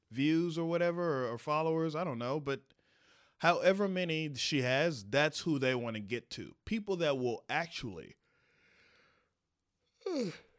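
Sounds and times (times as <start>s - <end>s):
speech: 0.1s - 2.8s, 3.4s - 8.2s, 10.1s - 10.5s
person yawning: 10.0s - 10.5s.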